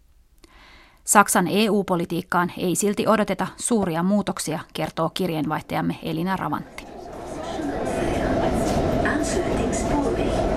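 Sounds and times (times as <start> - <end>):
speech: 1.1 - 6.9
subway train rumbling at a metro station in Brussels: 5.2 - 10.5
rail clatter: 6.2 - 10.5
voices: 6.4 - 10.5.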